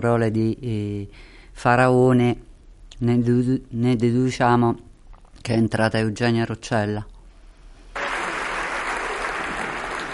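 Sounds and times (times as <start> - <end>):
speech: 0.0 - 7.1
large crowd applauding in a parliamentary chamber: 8.0 - 10.1.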